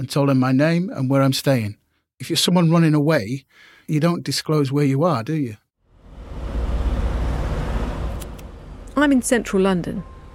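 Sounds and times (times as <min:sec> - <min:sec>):
speech: 0:00.0 - 0:05.6, 0:09.0 - 0:10.1
continuous roar of passing street traffic: 0:05.9 - 0:10.3.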